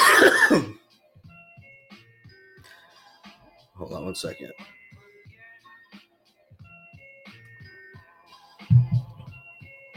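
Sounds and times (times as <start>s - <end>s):
harsh raspy coughs: 0.0s - 0.8s
speech: 0.5s - 0.8s, 4.0s - 4.8s.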